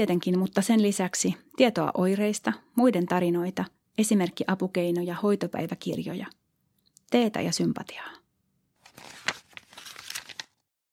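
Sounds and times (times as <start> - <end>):
speech: 0.0 - 6.4, 7.1 - 8.2
pages of a child's fifth-grade environmental studies textbook being flipped: 8.8 - 10.7.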